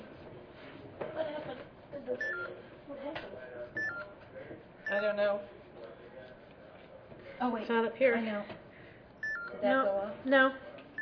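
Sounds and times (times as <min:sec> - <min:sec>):
short high electronic beeping in a room: 0:02.2 - 0:02.5, 0:03.8 - 0:04.1, 0:09.2 - 0:09.6
speech: 0:05.0 - 0:05.6, 0:07.4 - 0:08.6, 0:09.6 - 0:10.6.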